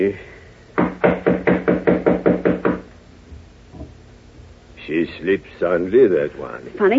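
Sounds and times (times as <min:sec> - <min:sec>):
speech: 0:00.0 - 0:00.3, 0:05.0 - 0:06.9
firm knocks on the wooden door of a suite: 0:00.8 - 0:02.9.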